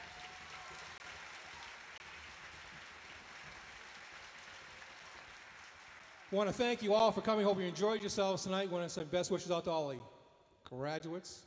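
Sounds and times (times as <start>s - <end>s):
audience applause: 0.0s - 7.4s
speech: 6.3s - 10.1s, 10.7s - 11.4s.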